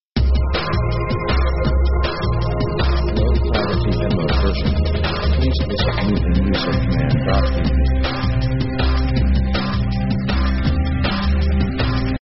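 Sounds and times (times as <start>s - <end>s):
electro pop synth themes: 0.2s - 12.2s.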